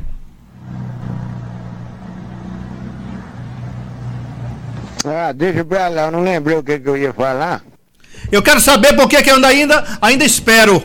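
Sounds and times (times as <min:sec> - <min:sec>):
bus engine revving as the bus pulls fast into a bus station: 0:00.0 - 0:05.1
speech: 0:05.0 - 0:07.7, 0:08.3 - 0:10.8.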